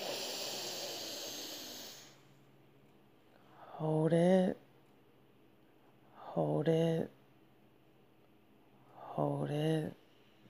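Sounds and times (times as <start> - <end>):
deep breath in: 0.0 - 2.2
speech: 3.8 - 4.6, 6.4 - 7.2, 9.2 - 10.0.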